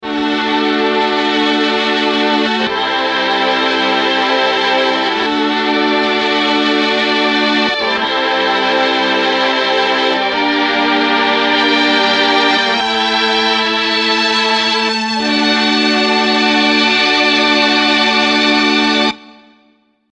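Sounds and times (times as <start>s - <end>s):
violins: 0.0s - 19.5s.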